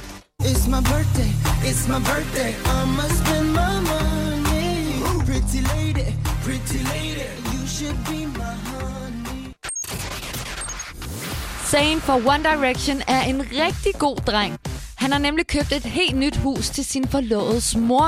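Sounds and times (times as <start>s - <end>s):
heavy pulsing bass beat: 0.4s - 9.5s, 11.8s - 18.0s
man singing a Bollywood-flavored pop song: 0.4s - 9.6s
speech: 0.6s - 4.2s, 5.0s - 9.3s, 11.7s - 18.0s.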